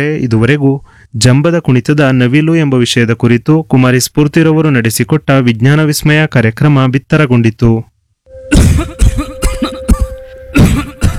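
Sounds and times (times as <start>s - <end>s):
speech: 0.0s - 7.9s
man's deep persistent chesty cough: 8.5s - 11.1s.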